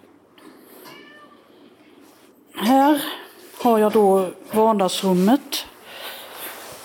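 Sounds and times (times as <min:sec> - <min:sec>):
steady low hum: 0:00.0 - 0:06.8
cat meowing: 0:00.9 - 0:01.5
speech: 0:02.6 - 0:05.7.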